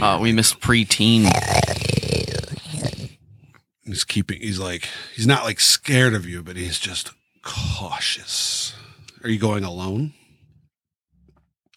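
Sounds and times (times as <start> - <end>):
speech: 0.0 - 1.8, 3.9 - 10.2
person imitating the deep rough growl of a large predatory cat-sized creature: 1.0 - 3.2.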